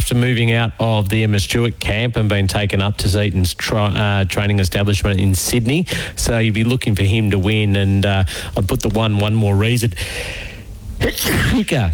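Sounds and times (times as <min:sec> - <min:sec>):
speech: 0:00.1 - 0:11.9
sneeze caught on an open microphone: 0:11.0 - 0:11.9.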